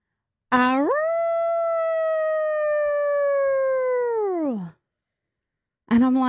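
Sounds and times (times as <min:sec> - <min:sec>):
boy in bed imitating a wolf howl: 0:00.6 - 0:04.8
speech: 0:06.0 - 0:06.2.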